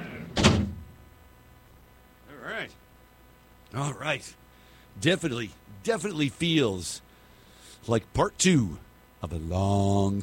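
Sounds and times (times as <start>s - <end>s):
heavy door shutting with a thud: 0.3s - 0.9s
speech: 2.6s - 2.8s, 3.7s - 4.4s, 5.0s - 7.1s, 7.8s - 10.2s.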